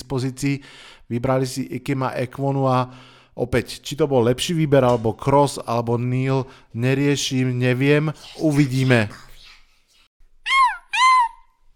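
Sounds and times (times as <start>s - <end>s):
speech: 0.1s - 9.3s
five-year-old boy imitating cat meows: 10.5s - 11.5s.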